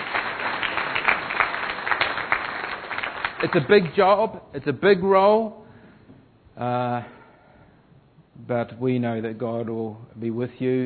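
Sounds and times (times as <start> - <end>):
crowd applauding in a church: 0.0 - 4.1
speech: 3.4 - 5.6, 6.6 - 7.2, 8.4 - 10.8.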